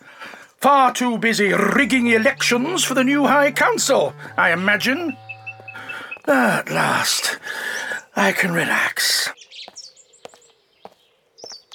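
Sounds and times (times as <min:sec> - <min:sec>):
speech: 0:00.6 - 0:05.2, 0:06.3 - 0:09.4
thrush singing: 0:01.4 - 0:07.4.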